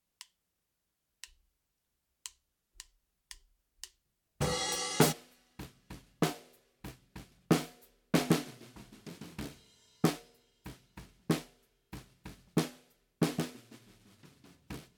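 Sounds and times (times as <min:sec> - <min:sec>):
snare drum recorded from the bottom without effects: 0:04.4 - 0:14.9.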